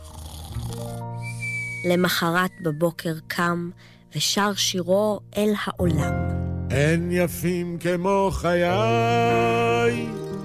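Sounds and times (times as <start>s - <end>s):
man snoring asleep in bed: 0.0s - 1.0s
thin high whistling tone: 1.1s - 3.2s
speech: 1.8s - 10.2s.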